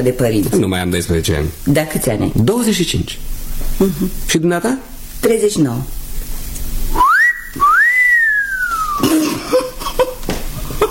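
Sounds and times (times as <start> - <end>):
speech: 0.0 - 6.0
person giving a two-part wolf whistle: 6.9 - 9.0
brief cough: 9.0 - 10.2.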